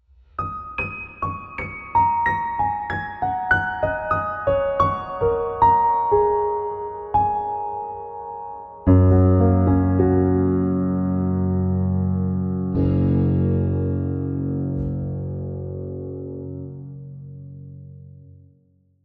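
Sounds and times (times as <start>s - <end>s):
piano through plate reverb: 0.0s - 19.0s
guitar through plate reverb: 8.9s - 18.2s.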